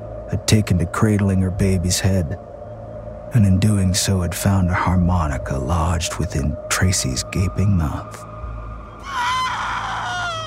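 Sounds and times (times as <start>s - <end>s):
speech: 0.3s - 2.5s, 3.3s - 8.3s
woman screeching in anguish: 9.0s - 10.4s.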